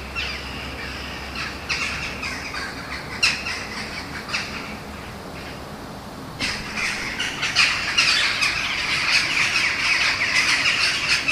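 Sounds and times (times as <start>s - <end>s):
Eurasian jackdaw calls with harsh chatter: 0.0s - 5.6s, 6.4s - 11.3s.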